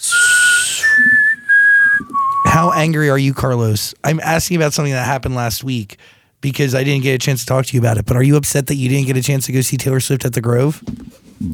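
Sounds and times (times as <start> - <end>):
person whistling: 0.0 - 2.8
speech: 2.6 - 11.5.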